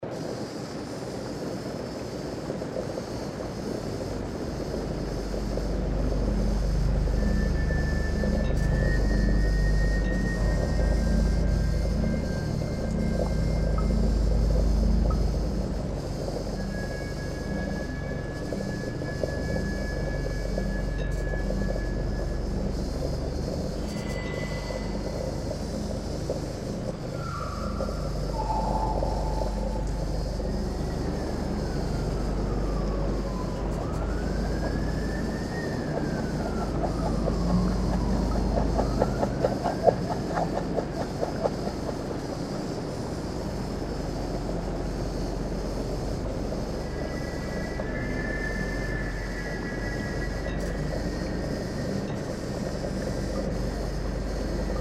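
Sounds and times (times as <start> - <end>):
creepy ambience: 0.0 - 54.8.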